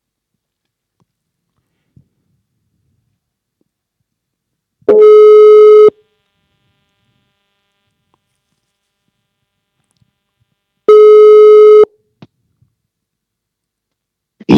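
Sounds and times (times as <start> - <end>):
telephone ringback tone while placing a call: 4.9 - 6.0, 10.9 - 11.9.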